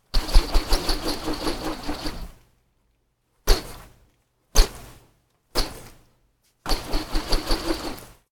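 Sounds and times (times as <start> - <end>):
phased rotating swooshes: 0.2 - 2.3, 6.7 - 8.1.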